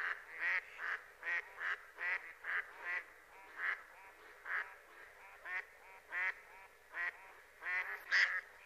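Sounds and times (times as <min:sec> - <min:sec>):
mallard giving rapid harsh quacks: 0:00.0 - 0:08.6.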